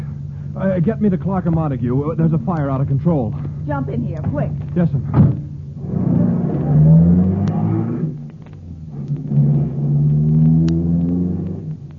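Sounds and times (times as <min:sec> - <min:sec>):
car engine revving and pulling away: 0:00.0 - 0:11.9
speech: 0:00.6 - 0:05.5.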